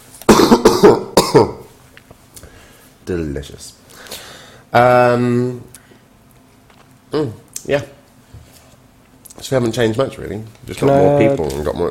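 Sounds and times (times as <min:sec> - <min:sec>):
person coughing with harsh throaty hacks: 0:00.3 - 0:01.7
speech: 0:00.8 - 0:01.6, 0:03.1 - 0:03.8, 0:04.7 - 0:05.8, 0:07.1 - 0:08.0, 0:09.4 - 0:11.8.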